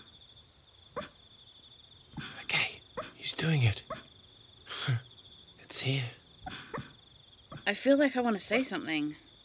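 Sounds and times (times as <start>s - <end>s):
small dog barking softly while dreaming: 0.9s - 1.2s, 3.9s - 4.1s
speech: 3.4s - 4.0s, 5.8s - 6.2s, 7.7s - 9.3s.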